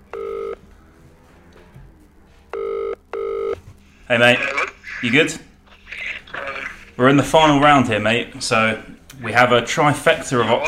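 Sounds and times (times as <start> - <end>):
phone line ringing on an outgoing call: 0.0 - 0.6, 2.5 - 3.6
speech: 4.1 - 5.5, 7.0 - 10.6.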